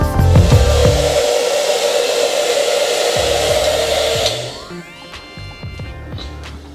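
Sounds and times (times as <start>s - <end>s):
hair dryer blowing: 0.2s - 4.8s.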